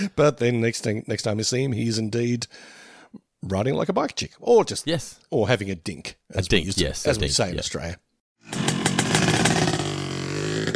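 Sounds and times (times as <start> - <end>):
speech: 0.0 - 8.6
motorcycle engines revving: 8.4 - 10.7.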